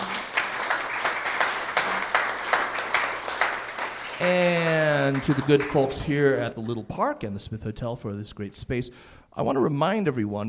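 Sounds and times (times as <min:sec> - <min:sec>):
room full of people applauding: 0:00.0 - 0:06.6
speech: 0:04.2 - 0:04.4, 0:05.1 - 0:10.4.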